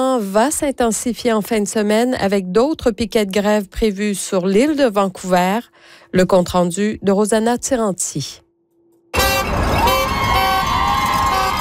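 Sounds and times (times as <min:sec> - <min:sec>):
speech: 0:00.0 - 0:08.4
car horns blaring in support of a strike picket line: 0:09.1 - 0:11.5
busy outdoor crowd noise: 0:09.2 - 0:11.5.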